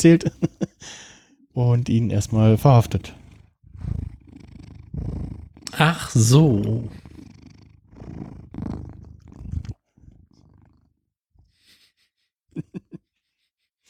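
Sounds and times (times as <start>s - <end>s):
speech: 0.0s - 1.0s, 1.6s - 3.2s, 5.7s - 7.0s
cat purring: 1.6s - 11.8s.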